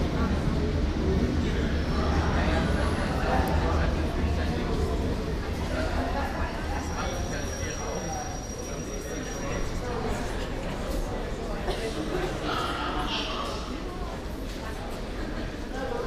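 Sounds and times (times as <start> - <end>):
subway train rumble: 0.0 - 15.7
passengers chattering in a subway carriage: 0.0 - 16.0
faint squeals: 6.7 - 10.1.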